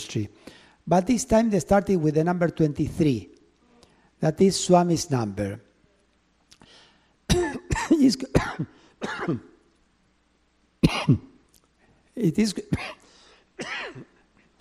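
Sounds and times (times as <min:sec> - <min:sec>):
speech: 0:00.0 - 0:03.3, 0:04.2 - 0:05.7, 0:08.0 - 0:09.5, 0:10.9 - 0:11.3, 0:12.2 - 0:13.0
person clearing throat: 0:07.3 - 0:09.6, 0:10.8 - 0:11.4, 0:12.7 - 0:13.0, 0:13.6 - 0:14.2
person coughing: 0:07.3 - 0:09.6, 0:10.8 - 0:11.4, 0:12.7 - 0:14.2.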